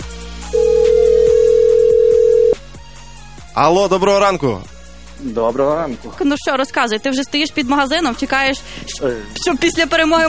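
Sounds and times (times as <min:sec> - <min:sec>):
soft music: 0:00.0 - 0:10.2
outgoing phone call ringback tone: 0:00.6 - 0:02.6
speech: 0:03.6 - 0:10.2.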